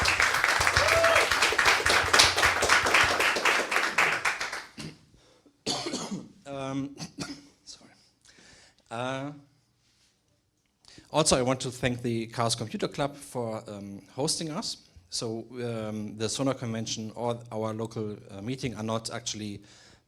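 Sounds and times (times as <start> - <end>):
audience applauding: 0.0 - 4.8
speech: 11.1 - 19.8.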